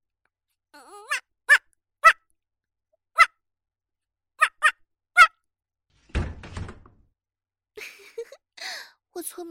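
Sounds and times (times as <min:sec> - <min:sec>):
person imitating a female dog barking: 0:00.8 - 0:02.2
clattering thud: 0:06.0 - 0:07.0
speech: 0:09.2 - 0:09.4.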